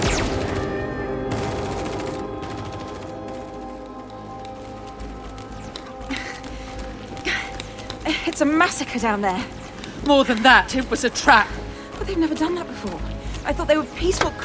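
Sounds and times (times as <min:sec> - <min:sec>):
soldiers firing guns at will: 0:00.0 - 0:03.1
speech: 0:08.2 - 0:14.4.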